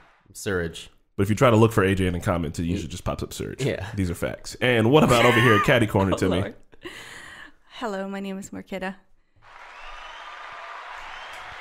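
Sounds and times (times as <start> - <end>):
speech: 0.3 - 7.1, 7.8 - 9.1
laughter: 5.0 - 6.5
crowd applauding: 9.4 - 11.6.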